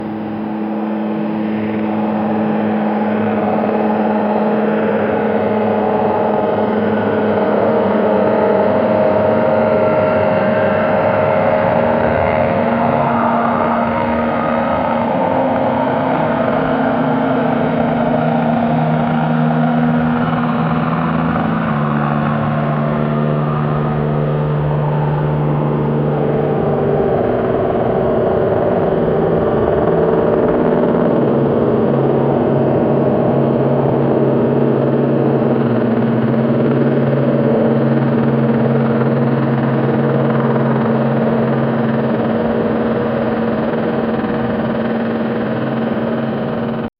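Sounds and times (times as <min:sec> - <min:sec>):
distant constant helicopter: 0:00.0 - 0:46.9.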